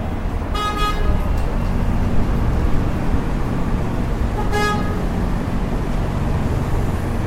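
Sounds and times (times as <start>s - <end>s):
city traffic roar: 0.0s - 7.2s
car horn blasts: 0.5s - 1.2s, 4.4s - 5.1s.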